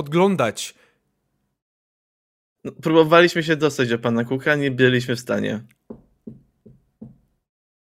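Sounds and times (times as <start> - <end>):
speech: 0.0 - 0.9, 2.6 - 6.4
soft knocking on a wooden door: 5.9 - 7.3.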